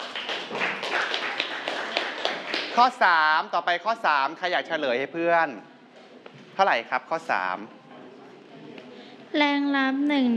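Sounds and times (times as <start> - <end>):
students clapping in a classroom: 0.0 - 3.0
speech: 2.8 - 5.7, 6.6 - 7.8, 9.3 - 10.3.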